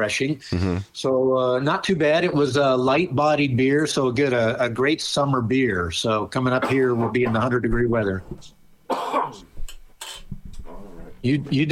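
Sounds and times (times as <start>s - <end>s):
speech: 0.0s - 8.6s, 11.2s - 11.7s
man coughing from a throat irritation: 6.6s - 7.0s, 8.9s - 9.5s.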